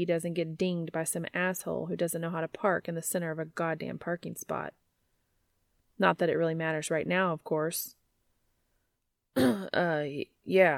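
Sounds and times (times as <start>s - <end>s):
speech: 0.0s - 4.8s, 6.0s - 8.0s, 9.4s - 10.7s
person clearing throat: 9.4s - 9.8s.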